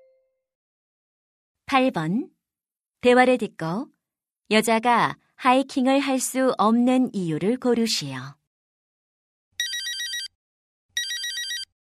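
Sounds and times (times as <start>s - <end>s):
speech: 1.7s - 2.4s, 3.0s - 3.9s, 4.5s - 8.4s
telephone ringing: 9.6s - 10.4s, 11.0s - 11.8s.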